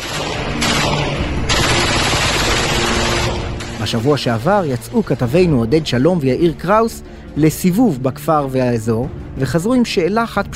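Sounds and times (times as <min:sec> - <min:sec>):
MAG machine gun fire in a Bedouin village in the Upper Galilee: 0:00.0 - 0:03.8
speech: 0:03.9 - 0:10.5.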